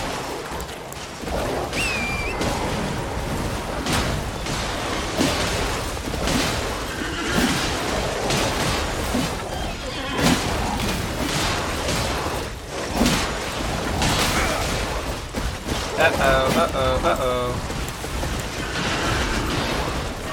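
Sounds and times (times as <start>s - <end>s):
rumbling impacts and crashes in a video game: 0.0s - 20.3s
horse whinnying in a video game: 6.9s - 7.7s, 9.5s - 10.6s
laughter: 16.0s - 17.6s.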